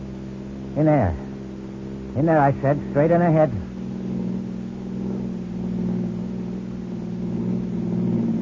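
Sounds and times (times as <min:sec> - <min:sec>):
car engine droning on a bumpy road: 0:00.0 - 0:08.4
speech: 0:00.8 - 0:01.3, 0:02.2 - 0:03.6.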